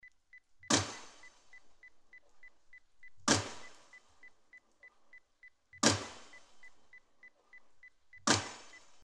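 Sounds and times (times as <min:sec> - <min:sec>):
pile driving: 0:03.1 - 0:04.0, 0:05.8 - 0:06.7, 0:08.2 - 0:09.0.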